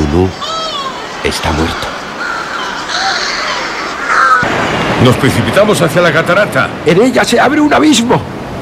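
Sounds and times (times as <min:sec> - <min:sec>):
speech: 0:00.1 - 0:00.4, 0:01.2 - 0:01.9, 0:05.0 - 0:08.3
birds crying out with harsh raspy crow-like caws: 0:00.2 - 0:04.5.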